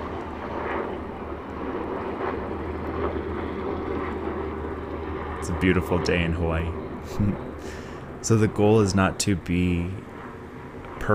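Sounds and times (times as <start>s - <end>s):
helicopters flying overhead with rotor-engine drone: 0.0s - 11.1s
speech: 5.4s - 10.1s.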